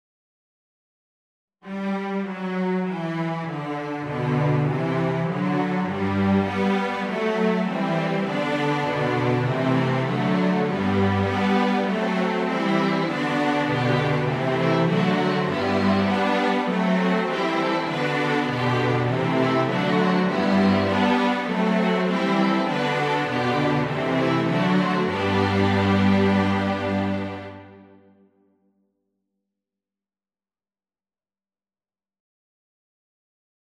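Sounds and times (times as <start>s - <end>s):
flexible mixed ensemble playing a canon: 2.3s - 28.0s.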